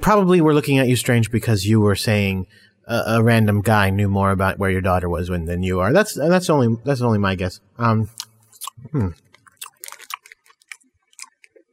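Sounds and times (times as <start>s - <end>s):
speech: 0.0s - 9.2s
smacking and clicking mouth noises: 8.1s - 11.7s
wet chewing of sour chewy candy: 8.1s - 11.7s.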